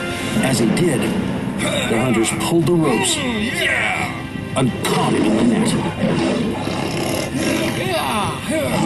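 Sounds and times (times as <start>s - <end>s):
speech: 0.5s - 8.8s
lion roaring loudly: 4.9s - 8.8s.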